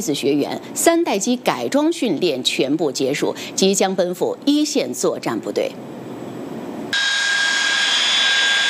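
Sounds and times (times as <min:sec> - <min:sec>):
speech: 0:00.0 - 0:06.1
J-11B fighter jet engines roaring while taxiing toward the takeoff runway: 0:06.9 - 0:08.6.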